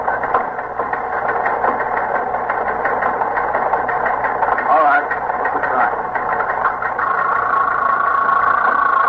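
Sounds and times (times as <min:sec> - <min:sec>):
teletype machine printing: 0:00.0 - 0:09.0.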